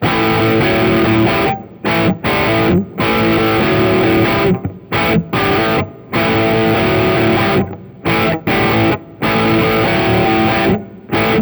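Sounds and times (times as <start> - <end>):
lead electric guitar on a Gibson neck pickup: 0.0 - 11.4.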